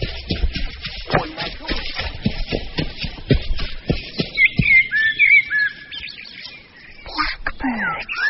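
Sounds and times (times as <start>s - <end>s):
soft shuffling footsteps: 0.0s - 5.0s
blackbirds singing fluty warbling whistled phrases: 0.0s - 8.2s.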